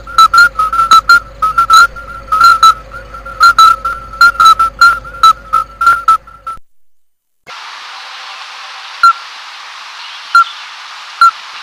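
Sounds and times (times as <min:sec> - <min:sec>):
common midwife toad giving quick clear whistled notes: 0:00.0 - 0:06.6.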